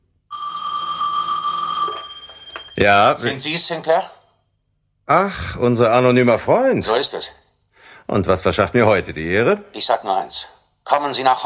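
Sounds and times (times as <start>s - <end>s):
telephone ringing with an incoming call: 0.3s - 4.0s
speech: 2.8s - 4.2s, 5.1s - 7.4s, 8.1s - 11.4s.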